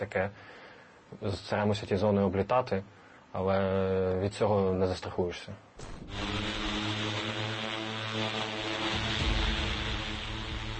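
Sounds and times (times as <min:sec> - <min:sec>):
speech: 0:00.0 - 0:06.5
heavy bomber drone propellers whining in daytime flight: 0:05.8 - 0:10.7.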